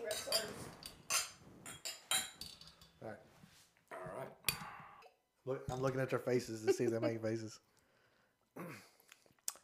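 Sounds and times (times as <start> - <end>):
glasses clinking together in a toast: 0.1 - 2.9
speech: 5.5 - 7.7.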